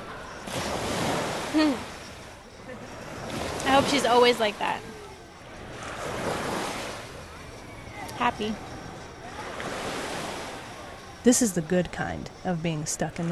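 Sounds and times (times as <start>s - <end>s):
waves breaking on a beach: 0.0s - 11.3s
speech: 1.6s - 1.9s, 3.8s - 4.9s, 8.2s - 8.7s, 11.2s - 13.3s.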